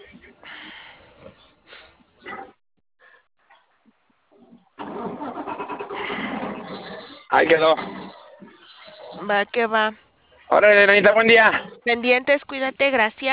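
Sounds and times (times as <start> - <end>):
car engine cranking: 4.8 - 6.9
speech: 7.3 - 7.9, 9.3 - 13.3.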